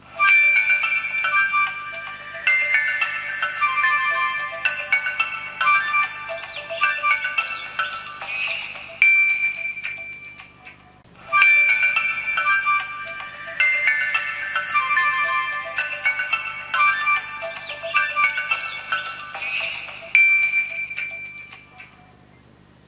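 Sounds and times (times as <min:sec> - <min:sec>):
Nokia 1200 phone ringtone: 0:00.1 - 0:22.3.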